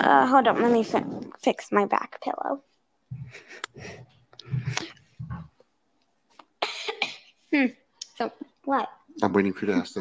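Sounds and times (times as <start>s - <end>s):
speech: 0.0s - 5.5s, 7.5s - 9.9s
throaty coughs from something caught in the throat: 6.6s - 7.3s.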